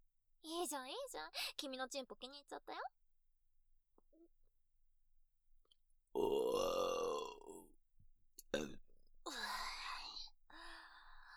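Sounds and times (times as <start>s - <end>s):
speech: 0.6s - 3.0s, 6.2s - 6.8s
person burping, voiced and croaking: 6.2s - 7.7s, 8.5s - 8.8s.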